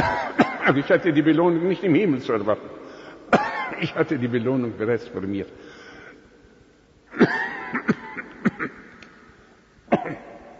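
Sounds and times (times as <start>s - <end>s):
person coughing: 0.0s - 0.8s, 3.3s - 4.0s, 7.1s - 8.9s, 9.9s - 10.4s
speech: 0.7s - 5.7s.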